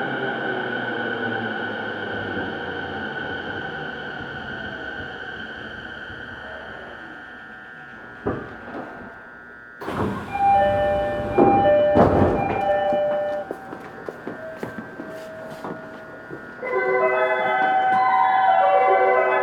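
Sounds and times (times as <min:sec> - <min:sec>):
train motor whine between stations: 0:00.0 - 0:19.4
bright chimes: 0:10.4 - 0:19.4.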